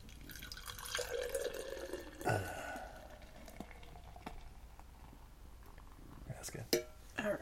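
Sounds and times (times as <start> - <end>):
light straw-colored Pilsner beer pouring into a glass: 0.0 - 6.0
speech: 2.3 - 2.6.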